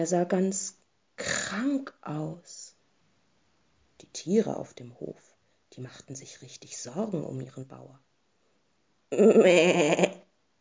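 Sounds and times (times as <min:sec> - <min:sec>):
speech: 0:00.0 - 0:02.7, 0:04.0 - 0:08.1, 0:09.1 - 0:10.2
goat bleating on a farm: 0:09.2 - 0:10.2.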